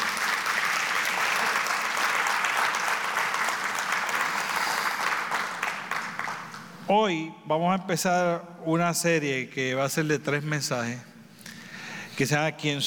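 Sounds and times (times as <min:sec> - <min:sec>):
church audience applauding in praise of God: 0:00.0 - 0:06.8
speech: 0:06.9 - 0:11.1, 0:12.2 - 0:12.8.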